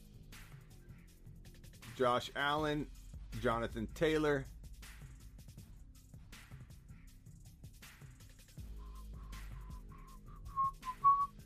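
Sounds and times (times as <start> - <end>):
speech: 2.0 - 4.5
person whistling a simple melody: 8.8 - 11.4.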